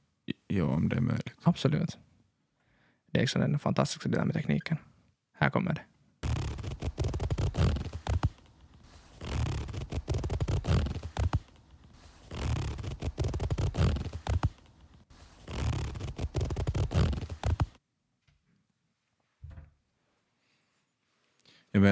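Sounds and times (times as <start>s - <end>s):
speech: 0.6s - 2.1s, 3.1s - 5.9s
finger raked along the teeth of a hair comb: 6.2s - 17.8s.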